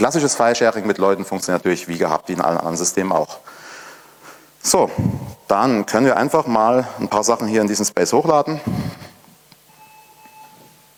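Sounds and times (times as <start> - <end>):
speech: 0.0 - 3.6, 4.6 - 9.0
faint steady high-pitched electronic beep: 9.7 - 10.9.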